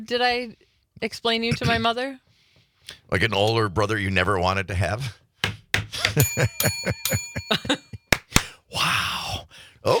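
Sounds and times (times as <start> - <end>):
speech: 0.0 - 2.2, 2.8 - 5.2, 5.9 - 7.9, 8.8 - 9.9
bright bell ringing with a shimmering tone: 6.2 - 8.3.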